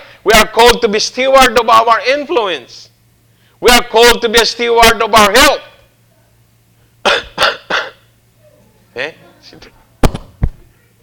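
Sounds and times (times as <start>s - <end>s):
man preaching a sermon: 0.0s - 2.9s, 3.6s - 5.8s
speech: 0.4s - 2.9s, 3.6s - 5.7s, 9.0s - 9.8s
man coughing: 7.0s - 8.1s.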